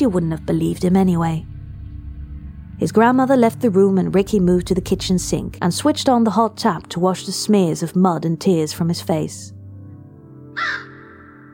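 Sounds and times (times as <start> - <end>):
speech: 0.0 - 1.5, 2.8 - 9.6, 10.6 - 10.9
crow cawing: 10.5 - 11.5.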